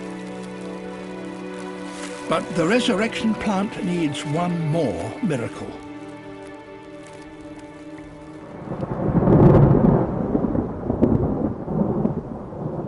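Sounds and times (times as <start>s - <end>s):
rain pattering onto plant branches: 0.0s - 12.8s
speech: 2.3s - 5.8s.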